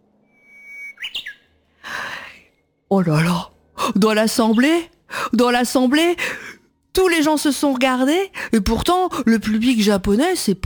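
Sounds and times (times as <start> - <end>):
two imitators whistling Japanese bush warbler song at a concert in Japan: 0.2 - 2.6
speech: 2.9 - 6.4, 7.0 - 10.6.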